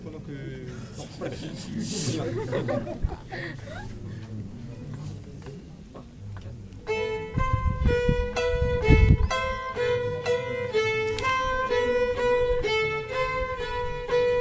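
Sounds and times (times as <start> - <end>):
laughter: 0.7 - 4.5
harps: 6.8 - 14.4
violins: 6.8 - 14.4.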